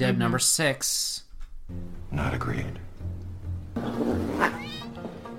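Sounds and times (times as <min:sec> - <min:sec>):
speech: 0:00.0 - 0:02.9
cat yowling as it is thrown out of a window: 0:04.3 - 0:05.0.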